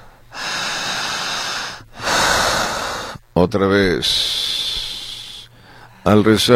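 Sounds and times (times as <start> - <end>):
deep airy breath drawn in during guided relaxation: 0.3 - 3.2, 4.2 - 6.1
speech: 3.4 - 4.4, 6.0 - 6.5.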